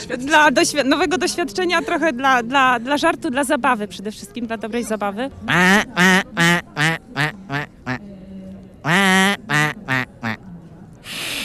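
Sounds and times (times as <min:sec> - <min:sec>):
speech: 0:00.0 - 0:06.5
person imitating mallard duck quacking: 0:05.5 - 0:08.0, 0:08.8 - 0:10.4
faint breathy hiss: 0:11.0 - 0:11.4.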